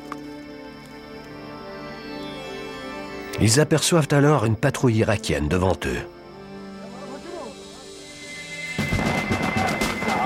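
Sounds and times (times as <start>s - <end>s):
speech: 3.4s - 6.2s
rapid gunfire as a commando unit meets an Iraqi patrol by a river: 8.8s - 10.2s.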